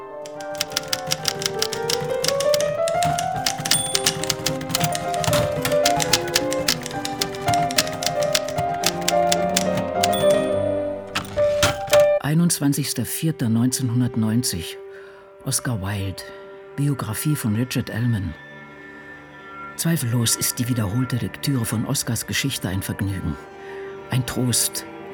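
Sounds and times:
mechanical typewriter keystrikes clattering: 0:00.0 - 0:12.2
faint music: 0:00.0 - 0:25.1
speech: 0:12.6 - 0:14.8, 0:15.4 - 0:18.5, 0:19.8 - 0:25.1.

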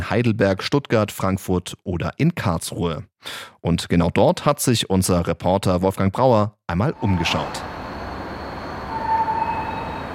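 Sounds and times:
speech: 0:00.1 - 0:07.7
thin high metallic squeal of a train: 0:07.0 - 0:10.1
train moving through Karlsruhe main station in Germany: 0:07.0 - 0:10.1.

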